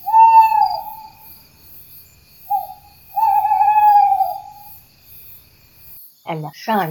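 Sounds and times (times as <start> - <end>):
owl hooting: 0.0 - 1.3, 2.5 - 4.8
speech: 6.3 - 6.9.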